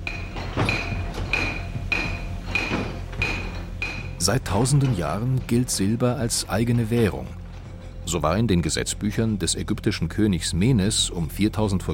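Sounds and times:
hammer mill trip hammer striking metal: 0.0s - 6.9s
speech: 4.2s - 7.4s, 8.1s - 11.9s.

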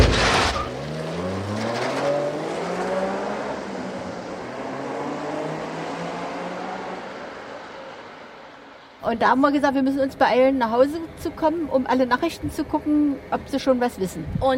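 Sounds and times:
engine of a green Wartburg car pulling away onto the road: 0.0s - 9.0s
speech: 9.1s - 14.5s.

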